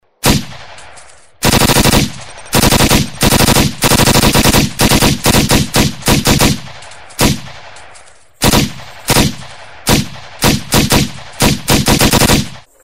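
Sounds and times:
PPSh submachine gun firing: 0.2 - 12.7.

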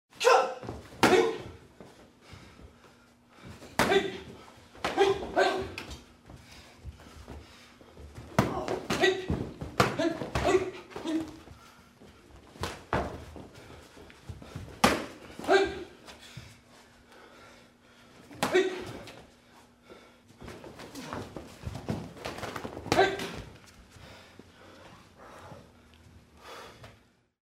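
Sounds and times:
karate fighters fighting: 0.2 - 2.0, 3.4 - 7.4, 8.0 - 11.6, 12.3 - 16.6, 18.2 - 19.3, 20.4 - 23.8.

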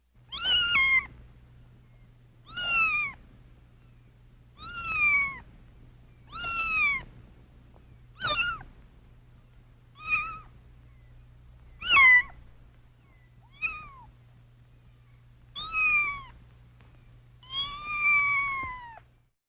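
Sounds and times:
kitten meowing: 0.3 - 1.1, 2.4 - 3.2, 4.6 - 5.5, 6.3 - 7.1, 8.2 - 8.7, 9.9 - 10.5, 11.8 - 12.4, 13.4 - 14.1, 15.6 - 16.4, 17.4 - 19.0.

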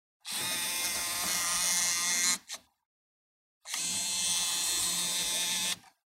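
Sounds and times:
camera zoom motor: 0.3 - 2.6, 3.7 - 5.9.

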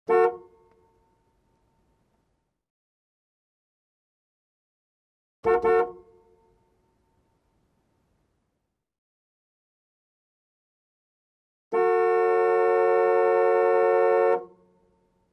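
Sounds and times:
car horn klaxon: 0.0 - 0.9, 5.4 - 6.6, 11.7 - 14.7.

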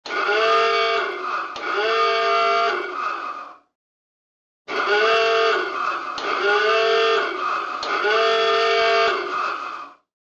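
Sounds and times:
alarm signal on a submarine: 0.1 - 3.0, 4.7 - 9.8.

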